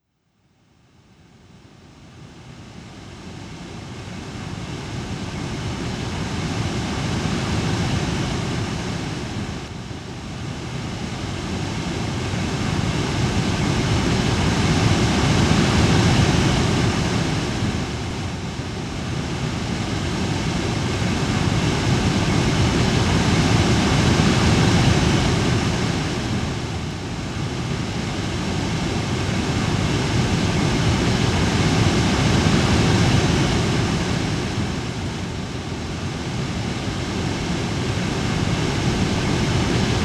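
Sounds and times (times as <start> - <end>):
white noise: 0.0 - 40.0
morning waves: 3.3 - 40.0.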